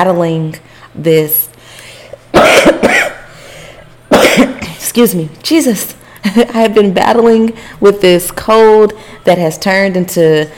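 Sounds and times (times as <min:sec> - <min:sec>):
speech: 0:00.0 - 0:01.5, 0:04.4 - 0:10.5
harsh coughs: 0:02.3 - 0:03.4, 0:04.1 - 0:04.8.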